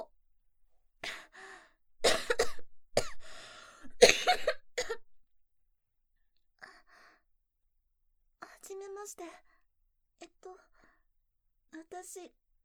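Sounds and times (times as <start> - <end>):
harsh coughing bursts: 2.0 - 3.2, 3.9 - 5.0
speech: 9.1 - 9.5, 10.2 - 10.7, 11.9 - 12.4.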